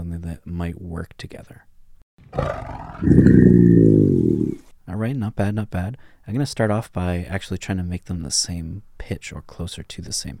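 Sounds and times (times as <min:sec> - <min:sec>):
speech: 0:00.2 - 0:01.7, 0:02.3 - 0:10.3
deep rumbling lynx growl: 0:02.2 - 0:04.6
tiger raspy inhale: 0:02.3 - 0:04.6.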